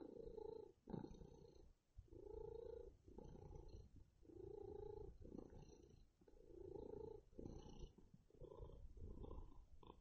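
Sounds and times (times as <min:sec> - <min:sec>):
male cat purring: 0:00.0 - 0:09.9.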